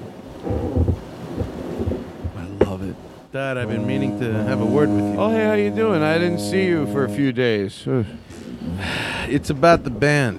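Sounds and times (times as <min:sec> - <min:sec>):
water washing and splashing against a boat: 0:00.0 - 0:06.6
boat moving on water: 0:00.0 - 0:07.4
speech: 0:03.3 - 0:10.3.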